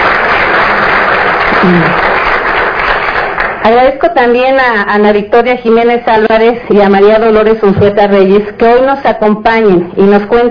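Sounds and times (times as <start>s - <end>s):
audience applauding: 0.0s - 3.6s
speech: 1.6s - 2.0s, 3.6s - 10.4s.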